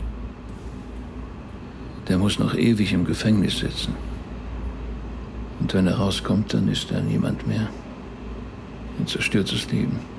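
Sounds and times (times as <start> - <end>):
steady low mechanical rumble: 0.0 - 10.1
speech: 2.1 - 4.2, 5.7 - 7.8, 9.0 - 10.1.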